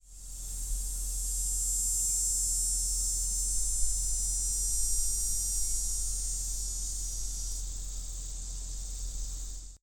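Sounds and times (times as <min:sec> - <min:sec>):
dog day cicadas: 0:00.0 - 0:09.8.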